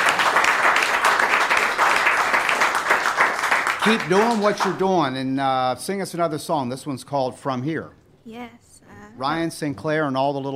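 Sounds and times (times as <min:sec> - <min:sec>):
crowd applauding a folk musician's performance: 0:00.0 - 0:05.0
speech: 0:03.8 - 0:10.5.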